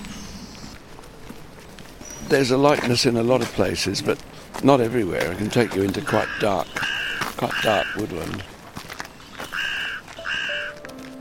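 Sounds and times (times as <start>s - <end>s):
soft bird calling: 0.0s - 1.2s, 5.3s - 10.9s
speech: 2.3s - 8.5s
carrion crows cawing near a woodland path: 5.3s - 10.8s.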